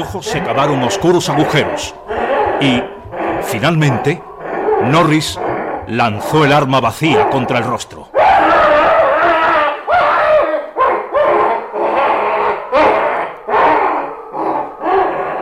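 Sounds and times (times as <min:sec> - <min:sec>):
speech: 0:00.0 - 0:02.0, 0:02.6 - 0:08.0
harsh snarling shrieks and roars of a monstrous creature: 0:00.0 - 0:15.4
monstrous tentacled creature screaming in hatred: 0:00.0 - 0:15.4.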